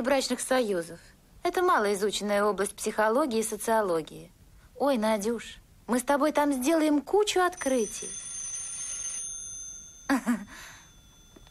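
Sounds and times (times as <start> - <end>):
speech: 0.0 - 8.3, 10.1 - 10.7
telephone ringing: 7.5 - 11.4.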